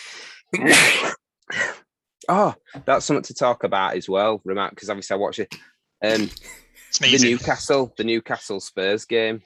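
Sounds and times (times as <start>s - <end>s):
speech: 0.5s - 1.2s, 2.3s - 9.4s
person sneezing: 0.6s - 1.8s.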